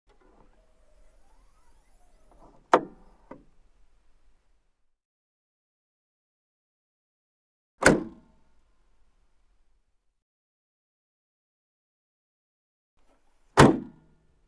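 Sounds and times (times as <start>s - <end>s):
hood opening and closing: 0.1s - 3.6s.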